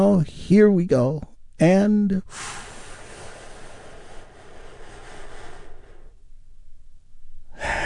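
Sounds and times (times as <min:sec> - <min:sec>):
speech: 0:00.0 - 0:02.6
deep breath in and out: 0:02.2 - 0:06.3, 0:07.5 - 0:07.8.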